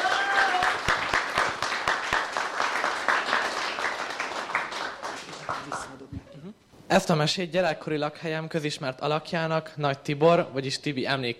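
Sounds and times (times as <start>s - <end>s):
audience applauding: 0.0s - 6.1s
speech: 6.9s - 11.3s.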